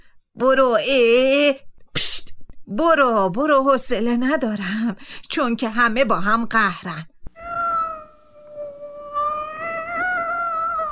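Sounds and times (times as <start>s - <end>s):
speech: 0.4s - 7.1s
cat meowing: 7.4s - 10.9s.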